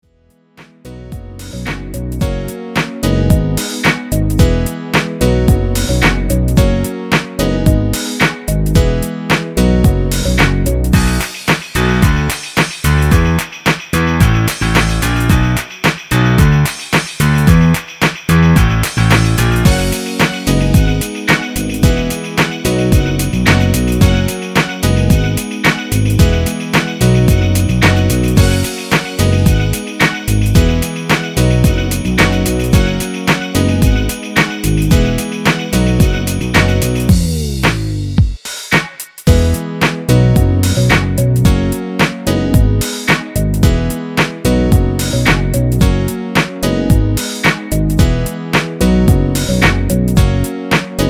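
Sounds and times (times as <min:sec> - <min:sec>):
piano backing: 0:00.4 - 0:51.0.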